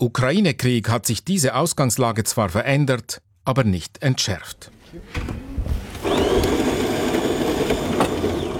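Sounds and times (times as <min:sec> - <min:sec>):
speech: 0:00.0 - 0:05.4
brand-new coffee machine whirring and grinding in a broadcaster newsroom in Daugavpils: 0:05.8 - 0:08.5.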